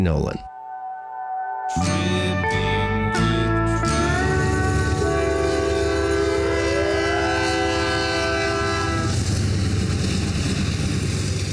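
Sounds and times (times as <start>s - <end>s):
speech: 0.0s - 0.5s, 1.7s - 2.4s
train horn honking: 1.7s - 9.8s
passing train rumbling by: 3.9s - 11.5s.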